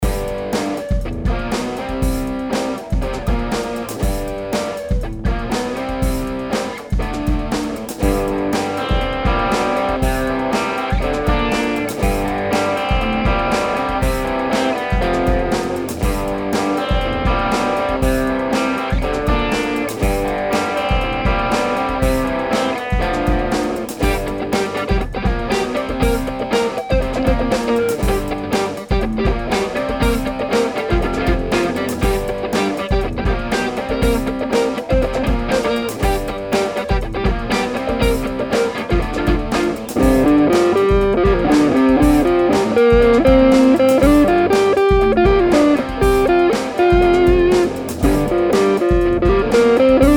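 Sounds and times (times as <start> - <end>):
electric guitar through an overdrive pedal: 0.0 - 50.1.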